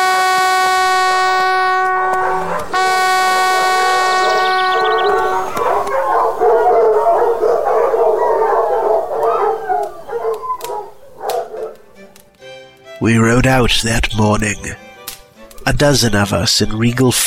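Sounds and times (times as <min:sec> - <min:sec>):
hunting horn blasts: 0:00.0 - 0:11.6
pack of dogs barking and howling excitedly: 0:00.9 - 0:12.2
speech: 0:13.0 - 0:14.8, 0:15.7 - 0:17.2.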